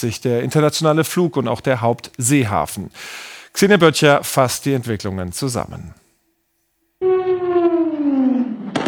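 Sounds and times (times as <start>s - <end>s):
speech: 0.0s - 6.0s
wailing siren sweeping downward in pitch: 7.0s - 8.7s.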